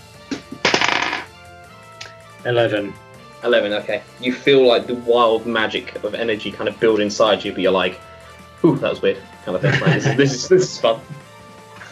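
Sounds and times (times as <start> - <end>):
twenty-sided die rolling on a hard table: 0.6 - 1.3
speech: 2.4 - 11.2
laughter: 9.5 - 11.2.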